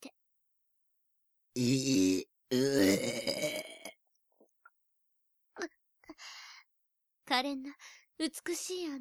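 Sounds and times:
person burping: 1.6s - 4.0s
speech: 8.4s - 8.9s.

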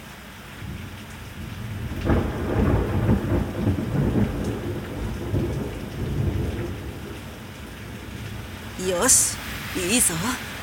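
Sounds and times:
deep rolls of thunder rumbling: 2.0s - 7.2s
steady heavy rain hissing in a thunderstorm: 8.6s - 10.6s
speech: 9.0s - 10.5s.

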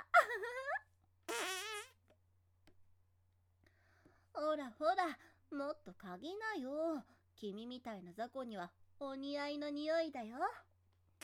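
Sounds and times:
farts: 1.3s - 2.0s
speech: 4.5s - 10.7s.

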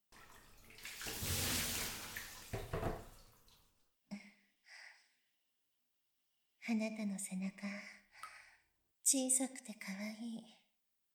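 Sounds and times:
bath water poured over someone's back: 0.0s - 3.7s
speech: 6.7s - 8.0s, 9.1s - 10.6s.

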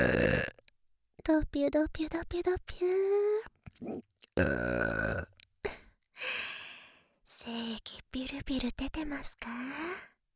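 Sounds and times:
loud drawn-out burp: 0.0s - 0.6s, 3.8s - 5.4s
speech: 1.3s - 5.4s, 7.4s - 10.1s.

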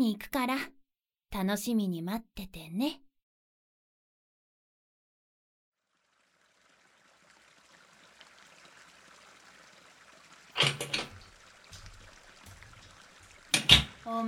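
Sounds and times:
speech: 0.0s - 3.0s, 10.6s - 11.1s, 14.1s - 14.2s
shower water running: 6.0s - 14.2s.

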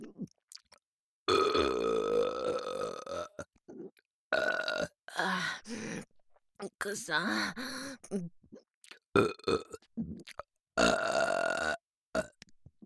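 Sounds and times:
person burping: 1.3s - 4.9s, 9.2s - 12.3s
speech: 6.9s - 8.4s.

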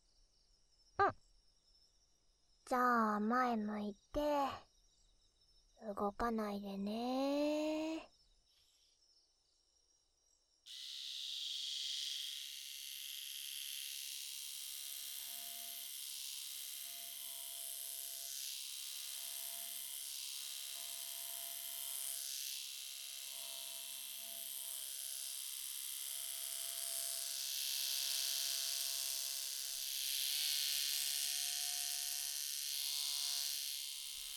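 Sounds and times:
speech: 2.7s - 4.7s, 5.8s - 8.1s
small electric eyebrow shaver buzzing near ear: 10.7s - 34.3s.

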